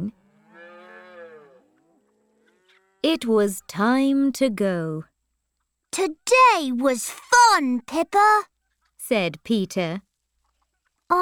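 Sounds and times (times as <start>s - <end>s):
baby cow mooing on a farm: 0.1s - 3.1s
speech: 3.0s - 5.1s, 6.0s - 8.5s, 9.1s - 10.1s.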